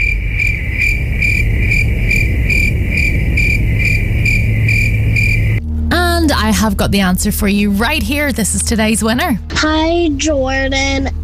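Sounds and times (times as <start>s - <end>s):
crickets chirping: 0.0s - 5.6s
low steady hum: 0.0s - 11.2s
speech: 6.6s - 11.2s.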